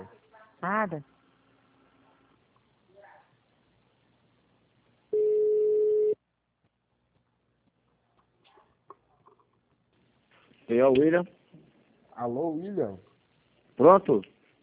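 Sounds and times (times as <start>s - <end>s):
speech: 0.0s - 1.1s, 10.7s - 11.4s, 12.2s - 13.1s, 13.8s - 14.3s
telephone transfer tone as a call is transferred to an extension: 5.1s - 6.2s.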